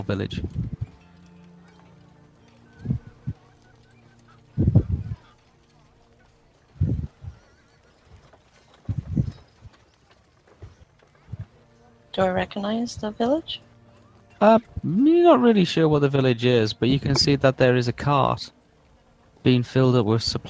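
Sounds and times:
speech: 0:00.0 - 0:00.7, 0:12.2 - 0:13.7, 0:14.4 - 0:18.6, 0:19.4 - 0:20.4
faint low musical bed: 0:00.0 - 0:07.4, 0:10.6 - 0:20.4
horse hooves clopping at night in the hills: 0:00.0 - 0:20.4.

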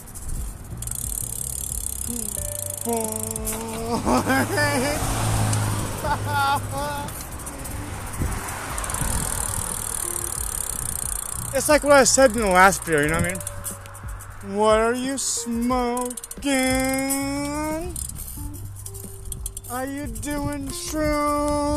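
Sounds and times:
bus driving past: 0:00.0 - 0:20.3
street noise: 0:00.0 - 0:21.7
brief vocal sounds: 0:02.1 - 0:04.3
speech: 0:02.1 - 0:05.3, 0:06.0 - 0:07.2, 0:11.5 - 0:13.5, 0:14.4 - 0:17.5, 0:19.7 - 0:21.7
laughter: 0:02.9 - 0:07.9.

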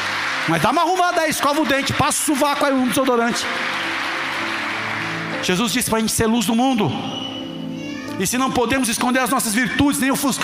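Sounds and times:
audience applauding: 0:00.0 - 0:06.9
speech: 0:00.5 - 0:04.0, 0:05.4 - 0:07.4, 0:08.2 - 0:10.4.

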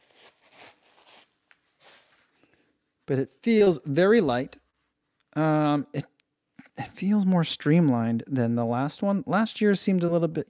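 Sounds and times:
paper rustling inside a newly opened shoe box: 0:00.0 - 0:02.4
speech: 0:03.1 - 0:04.6, 0:05.3 - 0:06.1, 0:06.8 - 0:10.4.

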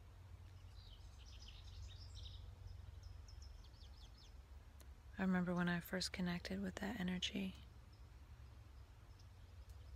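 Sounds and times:
several birds chirping and twittering outdoors: 0:00.0 - 0:09.9
speech: 0:05.2 - 0:07.6.

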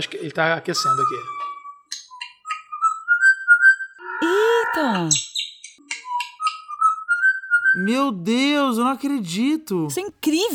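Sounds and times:
speech: 0:00.0 - 0:01.4, 0:04.8 - 0:05.2, 0:07.8 - 0:10.5
bird singing: 0:00.8 - 0:08.0.

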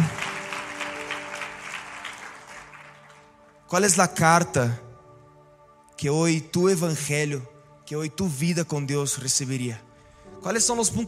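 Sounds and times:
audience applause: 0:00.0 - 0:03.4
speech: 0:03.7 - 0:04.8, 0:06.0 - 0:11.0.

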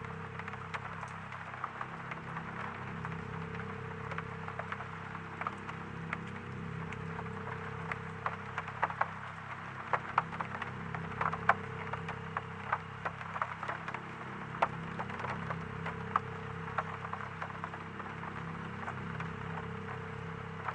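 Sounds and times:
constant low electrical hum with a faint pulsing drone: 0:00.0 - 0:20.7
rain pattering at night: 0:00.0 - 0:20.7.

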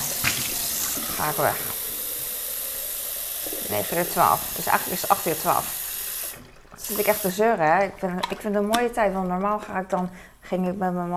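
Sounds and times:
water running from a tap into a water bottle: 0:00.0 - 0:07.8
speech: 0:01.2 - 0:01.7, 0:03.7 - 0:05.8, 0:06.8 - 0:11.1.

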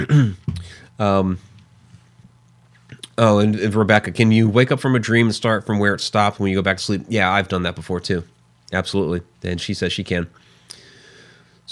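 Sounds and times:
speech: 0:00.0 - 0:00.4, 0:01.0 - 0:01.5, 0:03.2 - 0:10.8
man clearing throat: 0:00.0 - 0:00.8.

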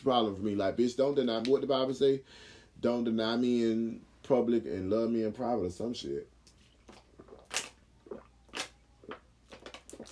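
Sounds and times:
speech: 0:00.0 - 0:06.3
mouth smacks: 0:06.5 - 0:10.1
person gulping water: 0:06.7 - 0:10.1.

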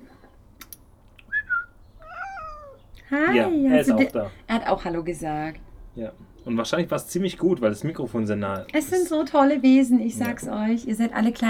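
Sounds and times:
cat meowing: 0:02.0 - 0:03.5
speech: 0:03.1 - 0:11.4.

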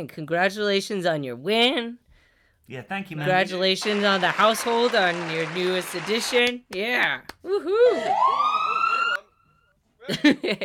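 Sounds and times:
speech: 0:00.0 - 0:02.0, 0:02.7 - 0:08.6, 0:10.1 - 0:10.6
police siren sound effect wail: 0:08.0 - 0:09.2.

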